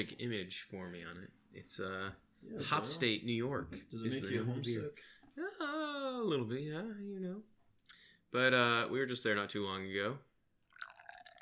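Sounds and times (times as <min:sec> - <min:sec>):
speech: 0:00.0 - 0:07.5, 0:08.3 - 0:10.3
dry hop IPA pouring from a can into a glass: 0:10.6 - 0:11.4.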